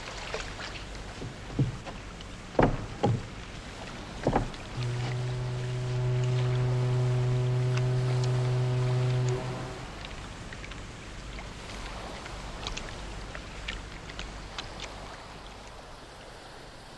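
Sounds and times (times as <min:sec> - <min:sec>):
wooden knocks and creaks of a rowboat shifting on the water: 0:00.1 - 0:10.8
steady low hum: 0:00.9 - 0:12.6.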